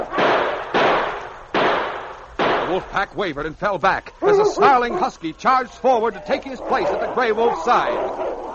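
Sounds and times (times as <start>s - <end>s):
gunshots: 0.1s - 2.9s
speech: 2.8s - 8.3s.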